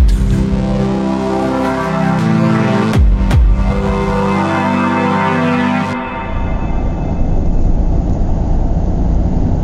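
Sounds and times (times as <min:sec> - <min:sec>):
cheesy radio jingle of layered synth tones: 0:01.0 - 0:07.8
steady low car engine rumble: 0:06.2 - 0:09.6.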